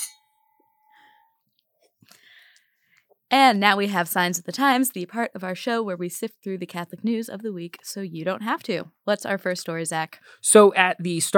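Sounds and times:
wine glasses clinking in a toast: 0.0s - 1.0s
speech: 3.3s - 11.3s.

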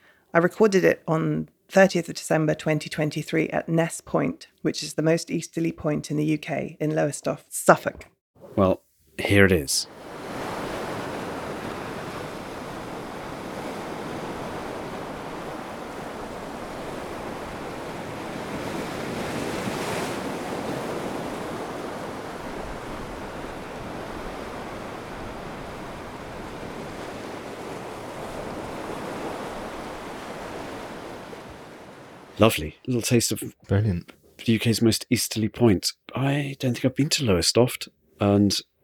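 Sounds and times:
speech: 0.3s - 10.2s, 32.4s - 38.7s
ocean waves crashing against rocks: 9.3s - 32.4s
wind gusts: 9.9s - 33.5s.

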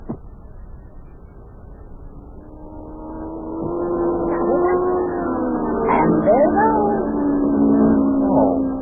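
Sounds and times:
racing car engine roaring through a tunnel: 2.0s - 8.8s.

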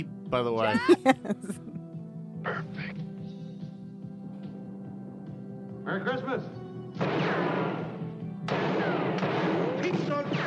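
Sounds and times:
speech: 0.0s - 1.8s, 5.9s - 7.2s
laughter: 0.7s - 1.7s
gunshots from a gun: 7.0s - 10.4s.

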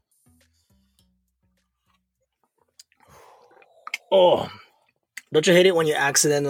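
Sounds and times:
wet mouth clicks: 2.6s - 4.1s
throaty gulps while drinking a shot: 2.6s - 5.0s
speech: 4.1s - 4.6s, 5.3s - 6.4s.

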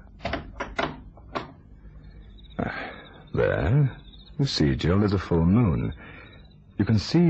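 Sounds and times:
wooden knocks and rattles of a garden door latch and frame: 0.2s - 1.6s
speech: 3.4s - 6.2s, 6.8s - 7.2s.

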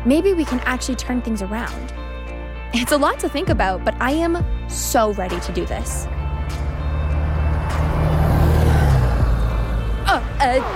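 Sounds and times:
speech: 0.0s - 2.1s, 2.7s - 6.6s, 10.4s - 10.7s
bus engine rumbling past: 5.3s - 10.7s.

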